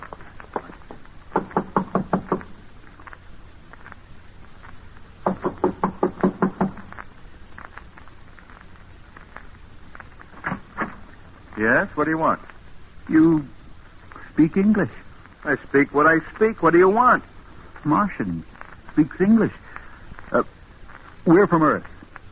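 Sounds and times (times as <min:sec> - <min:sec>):
firm knocking on a door: 0:01.4 - 0:02.4, 0:05.2 - 0:06.8
speech: 0:11.6 - 0:12.4, 0:13.1 - 0:13.6, 0:14.4 - 0:19.6, 0:20.3 - 0:20.6, 0:21.2 - 0:21.9.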